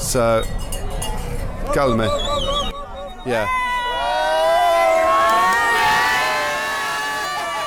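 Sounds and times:
speech: 0:00.1 - 0:00.7, 0:01.6 - 0:02.3, 0:03.2 - 0:03.6
big tournament crowd cheering and shouting on a sunny day: 0:01.6 - 0:07.6.

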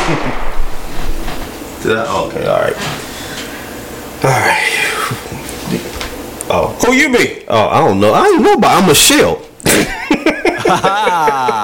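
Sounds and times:
gunshot sound effects: 0:00.0 - 0:01.5
speech: 0:00.1 - 0:00.5, 0:01.8 - 0:03.1, 0:04.2 - 0:05.5, 0:06.5 - 0:09.4, 0:10.3 - 0:11.3
laughter: 0:09.7 - 0:11.6.

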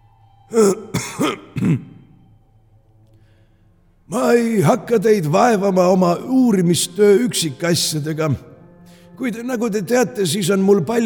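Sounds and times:
speech: 0:00.5 - 0:01.9, 0:04.1 - 0:08.5, 0:09.2 - 0:11.0
person clearing throat in gruff rasping bursts: 0:00.5 - 0:02.1.

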